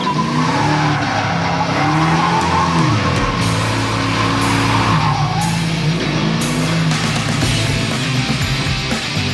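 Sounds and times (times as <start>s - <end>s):
car tires squealing and skidding: 0.0s - 7.1s
tuned Camaro engine roar: 0.0s - 9.3s.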